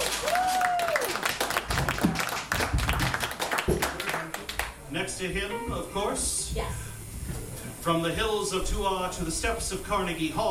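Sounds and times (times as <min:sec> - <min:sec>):
scattered audience cheers: 0:00.0 - 0:01.4
crowd applauding for a band member: 0:00.0 - 0:04.8
speech: 0:05.2 - 0:06.9, 0:07.8 - 0:10.4.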